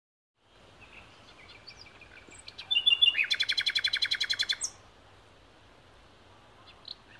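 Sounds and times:
common nightingale Luscinia megarhynchos singing: 0.8s - 4.8s.

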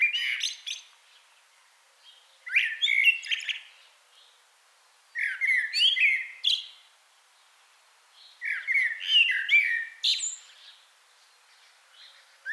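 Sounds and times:
common blackbird Turdus merula song with mellow warbled whistles and high twittering: 0.0s - 0.9s, 2.4s - 3.7s, 5.2s - 6.8s, 8.3s - 10.8s, 11.5s - 12.5s.

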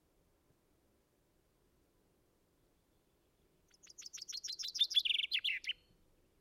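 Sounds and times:
common chaffinch singing, Fringilla coelebs: 3.7s - 5.9s.

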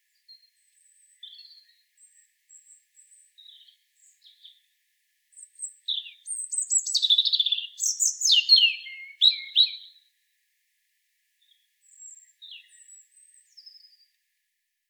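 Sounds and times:
European robin Erithacus rubecula singing: 0.3s - 4.6s, 5.4s - 10.1s, 11.4s - 14.1s.

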